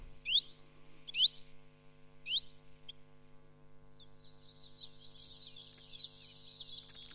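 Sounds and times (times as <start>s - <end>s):
common chiffchaff giving rising contact calls: 4.4s - 7.1s
thin high twittering: 4.4s - 7.1s.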